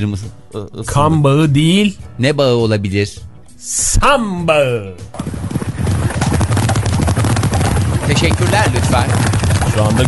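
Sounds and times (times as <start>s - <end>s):
speech: 0.0s - 5.4s, 8.1s - 10.0s
horses galloping: 5.1s - 10.0s.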